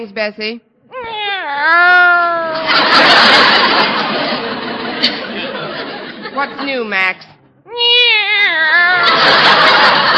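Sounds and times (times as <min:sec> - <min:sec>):
speech: 0:00.0 - 0:04.4, 0:06.4 - 0:10.1
cat meowing: 0:00.9 - 0:02.6, 0:07.7 - 0:09.2
laughter: 0:02.5 - 0:07.0, 0:08.8 - 0:10.1.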